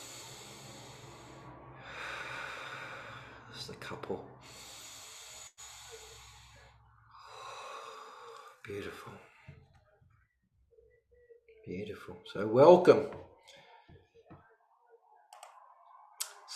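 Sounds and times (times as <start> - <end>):
deep breathing in and out: 0.0 - 9.8
speech: 3.7 - 4.6, 8.7 - 9.3, 11.7 - 13.3.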